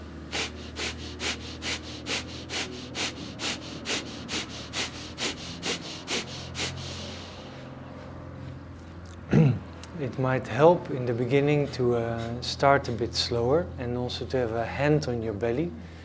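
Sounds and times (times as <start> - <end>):
fast breathing through the nose during a breathing exercise: 0.1 - 8.6
speech: 10.0 - 15.9.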